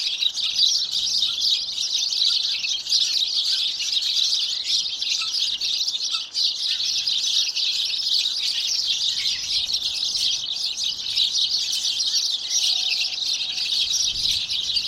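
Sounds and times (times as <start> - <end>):
Passer domesticus house sparrows chirping in a dense chorus: 0.0 - 14.8.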